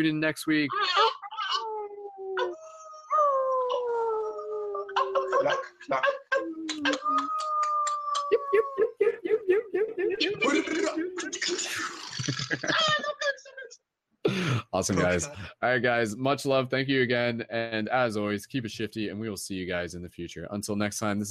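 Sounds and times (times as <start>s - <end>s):
speech: 0.0s - 1.2s, 5.4s - 6.2s, 14.8s - 21.2s
people giving playful yelps: 0.7s - 11.4s
several people howling like wolves: 1.5s - 10.8s
people laughing: 5.0s - 13.5s, 14.3s - 15.5s.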